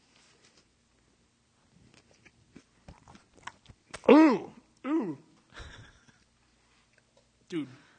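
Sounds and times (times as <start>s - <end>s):
wet open-mouthed chewing with smacking and crunching: 2.0s - 4.2s.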